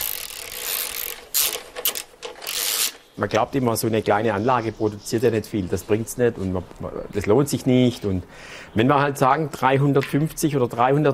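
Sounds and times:
screws being fastened with an Allen key during do-it-yourself assembly: 0:00.0 - 0:03.0
speech: 0:03.2 - 0:11.1.

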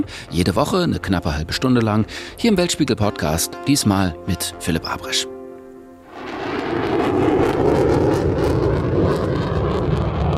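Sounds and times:
speech: 0:00.0 - 0:05.3
F-35 fighter jets roaring overhead: 0:06.1 - 0:10.3.

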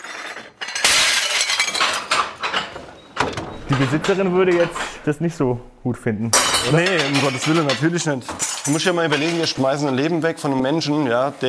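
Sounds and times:
glasses and porcelain from a wall cabinet shattering in a bin: 0:00.0 - 0:05.0, 0:06.3 - 0:09.7
speech: 0:03.7 - 0:11.4.

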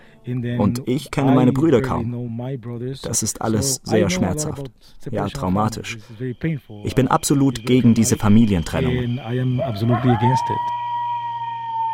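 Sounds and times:
faint constant hum: 0:00.0 - 0:11.9
speech: 0:00.2 - 0:10.8
coyotes yipping and howling at night in the desert: 0:06.1 - 0:11.9.

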